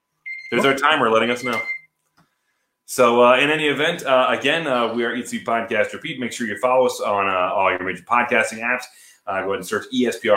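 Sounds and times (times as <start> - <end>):
timer alarm steady high-pitched electronic tone: 0.2 - 1.9
speech: 0.5 - 1.8, 2.9 - 10.3.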